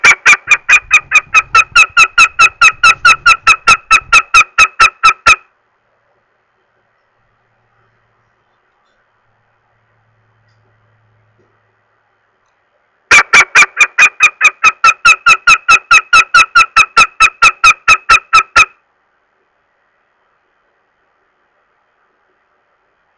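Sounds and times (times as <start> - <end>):
northern goshawk uttering harsh nasal kek calls: 0.0 - 5.5, 13.1 - 18.8.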